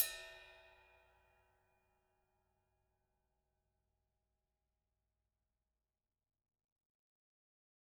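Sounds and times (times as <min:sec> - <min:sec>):
drum kit ride cymbal: 0:00.0 - 0:00.7.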